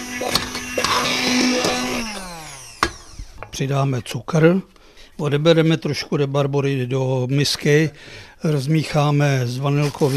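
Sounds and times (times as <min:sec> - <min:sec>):
immersion blender knocking against a pot: 0:00.0 - 0:02.1, 0:02.7 - 0:03.6
handheld immersion blender pureeing cooked rhubarb with water in a pot: 0:00.0 - 0:03.5
speech: 0:03.6 - 0:10.1.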